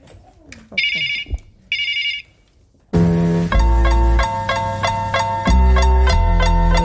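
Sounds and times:
telephone ringing for an incoming call: 0.8s - 2.4s
loud rhythmic music: 3.0s - 6.8s.

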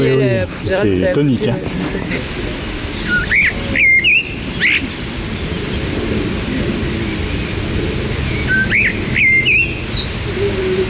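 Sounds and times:
speech: 0.0s - 4.0s
steady rushing outdoor background: 0.0s - 10.8s
blackcap warbler singing: 2.2s - 5.1s, 7.1s - 10.8s.

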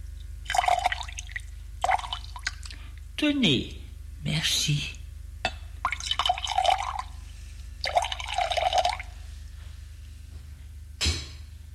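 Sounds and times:
drink pouring from a bottle into two glasses on a low table: 0.5s - 2.7s, 5.9s - 7.2s, 7.8s - 9.2s
speech: 3.2s - 5.0s.

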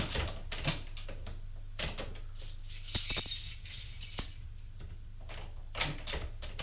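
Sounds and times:
quiet hum: 0.0s - 6.6s
metal keys tried in a drawer lock: 2.7s - 4.4s.

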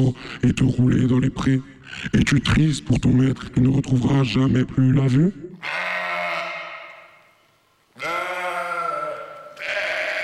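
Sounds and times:
speech: 0.0s - 5.9s
ram bleating: 5.6s - 7.2s, 8.0s - 10.2s.

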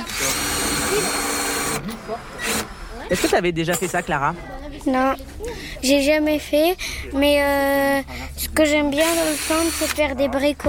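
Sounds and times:
power drill unscrewing a part and boring a new hole: 0.0s - 3.4s, 9.1s - 10.0s
speech: 3.1s - 10.6s.

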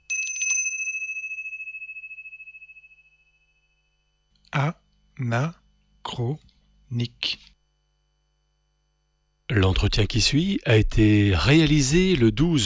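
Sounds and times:
small bell ringing: 0.0s - 4.2s
speech: 4.6s - 7.5s, 9.5s - 12.6s.

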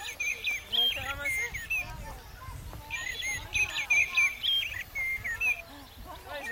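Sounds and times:
European greenfinch twittering chirps and short trills: 0.0s - 6.5s.

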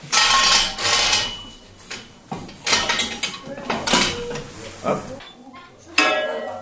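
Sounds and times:
mechanical system clanking and metallic scraping while lowering a column: 0.0s - 5.2s
speech: 4.8s - 5.1s.

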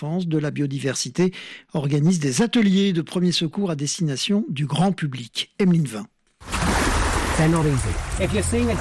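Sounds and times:
speech: 0.0s - 6.1s, 7.4s - 8.7s
lapping waves: 6.4s - 8.7s
steady rushing of sea water: 6.4s - 8.7s.

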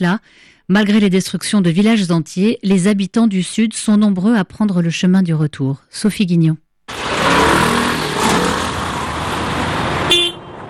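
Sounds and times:
speech: 0.0s - 6.6s
car traffic on a highway: 6.9s - 10.6s
car horn honking: 10.1s - 10.6s.

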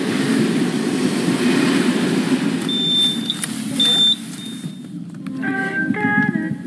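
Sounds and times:
rumble of trains at La Souterraine railway station: 0.0s - 6.6s
series of tones: 2.6s - 4.9s
thin high beeps: 2.7s - 4.8s.

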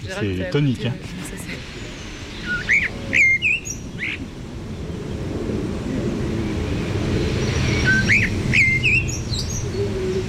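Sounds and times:
speech: 0.0s - 1.5s
steady low rush of wind or surf: 0.0s - 10.2s
Eurasian blackcap singing warbling phrases: 1.6s - 4.4s, 7.2s - 10.2s.

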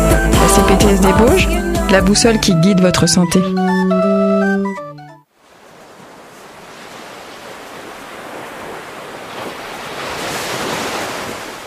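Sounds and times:
speech: 0.6s - 4.1s
ocean waves washing onto the shore: 5.3s - 11.6s.

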